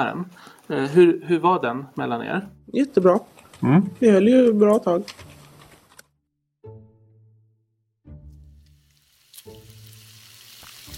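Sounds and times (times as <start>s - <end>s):
speech: 0.0s - 5.3s
pork sizzling and crackling in a hot pan: 8.5s - 10.9s.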